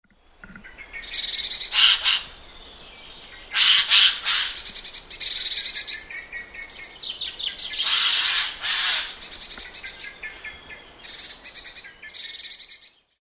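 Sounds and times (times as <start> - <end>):
jay calling: 0.4 - 2.5, 3.4 - 6.0, 7.7 - 10.2.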